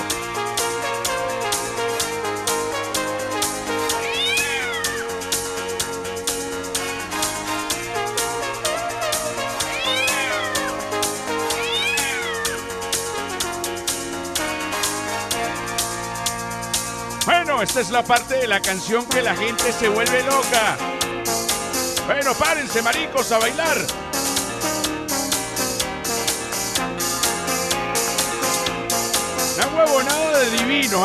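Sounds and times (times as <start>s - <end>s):
upbeat steady dance track: 0.0s - 31.0s
cat meowing in a song: 3.8s - 5.4s, 9.4s - 12.8s
speech: 17.6s - 21.0s, 22.1s - 24.0s, 30.0s - 31.0s.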